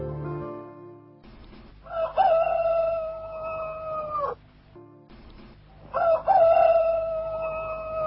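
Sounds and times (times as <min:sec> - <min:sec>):
roosters crowing at dawn in hamlets along a rural road: 0:01.9 - 0:04.4, 0:05.9 - 0:08.0.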